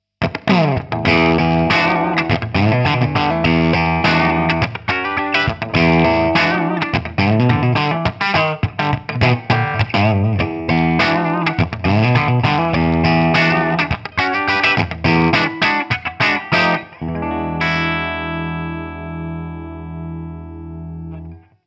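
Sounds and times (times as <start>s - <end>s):
Gibson LP electric guitar on 50s bridge pickup almost clean: 0.2s - 21.6s.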